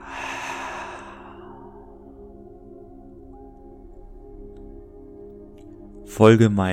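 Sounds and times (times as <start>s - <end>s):
long breathy exhale during a guided breathing exercise: 0.0s - 2.3s
quiet steady low tonal hum: 0.0s - 6.7s.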